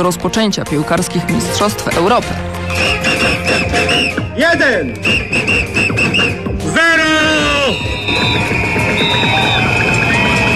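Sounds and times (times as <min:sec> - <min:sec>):
speech: 0:00.0 - 0:09.7
crowd blowing whistles in Poznań, Poland, marking Euro 2012 countdown: 0:02.7 - 0:04.3, 0:05.0 - 0:06.5, 0:07.3 - 0:10.5
cheering: 0:07.2 - 0:10.5.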